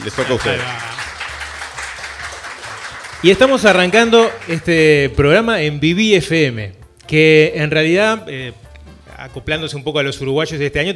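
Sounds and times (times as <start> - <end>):
speech: 0.0 - 1.0, 3.2 - 8.6, 9.2 - 10.9
crowd applauding: 0.0 - 5.2.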